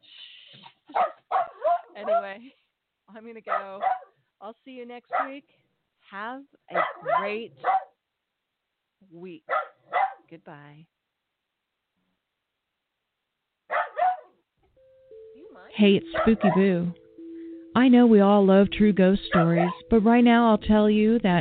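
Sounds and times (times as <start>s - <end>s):
dog barking: 0.9s - 2.4s, 3.5s - 4.2s, 5.1s - 5.4s, 6.7s - 8.0s, 9.5s - 10.3s, 13.7s - 14.4s, 16.1s - 16.7s, 19.3s - 19.8s
speech: 1.0s - 1.2s, 2.0s - 7.8s, 9.0s - 9.6s, 10.3s - 11.0s, 15.6s - 17.0s, 17.8s - 21.3s.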